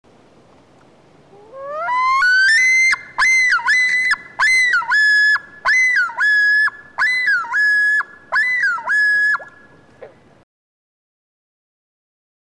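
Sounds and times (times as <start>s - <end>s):
loon wailing and ringing two-part call: 1.3s - 9.7s.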